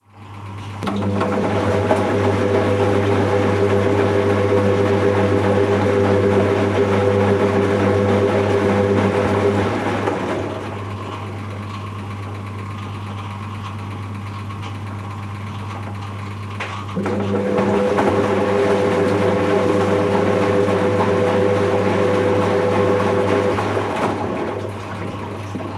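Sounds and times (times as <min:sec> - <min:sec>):
washing machine noises: 0:00.0 - 0:25.7.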